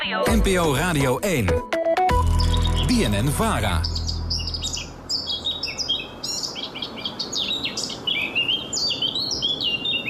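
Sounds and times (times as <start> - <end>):
speech: 0.1 - 1.7, 2.9 - 3.9
Eurasian blackcap song: 2.2 - 10.0.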